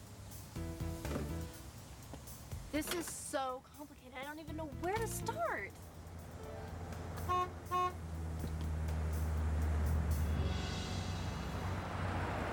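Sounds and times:
tow truck engine rumbling: 0.0s - 12.5s
speech: 2.7s - 5.9s
tow truck horn honking: 6.4s - 8.2s.

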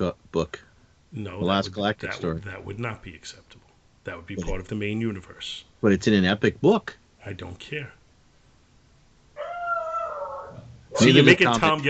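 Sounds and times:
speech: 0.0s - 8.0s, 11.0s - 11.8s
dog whining howl: 9.4s - 11.3s.

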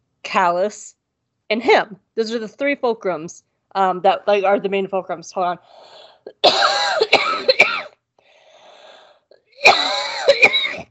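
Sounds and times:
speech: 0.3s - 7.6s
coughing and throat clearing from a scratchy throat: 6.3s - 7.9s, 9.6s - 10.8s.

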